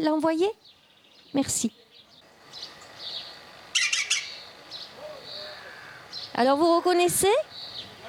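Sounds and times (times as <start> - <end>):
speech: 0.0 - 1.8, 6.4 - 7.5
faint high chirps from other birds: 0.6 - 6.4
woodpecker call: 2.5 - 6.4.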